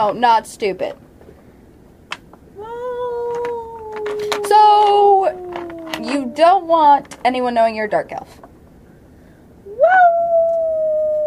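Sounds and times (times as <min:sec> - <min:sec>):
speech: 0:00.0 - 0:01.0, 0:04.5 - 0:05.4, 0:06.0 - 0:08.5
person imitating a wolf howl: 0:02.6 - 0:07.0, 0:09.6 - 0:11.2.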